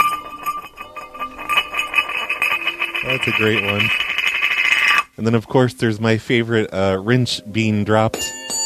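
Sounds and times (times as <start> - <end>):
hubcap crashing and clattering: 0.0 - 5.1
speech: 3.1 - 4.1, 5.2 - 8.3.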